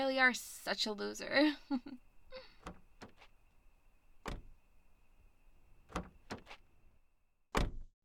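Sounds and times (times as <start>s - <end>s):
speech: 0.0s - 2.8s
soft thuds of someone getting into a car: 2.3s - 3.5s, 4.1s - 6.9s
car door latch clicks: 2.6s - 3.3s, 4.2s - 4.6s, 5.8s - 6.7s, 7.6s - 7.9s.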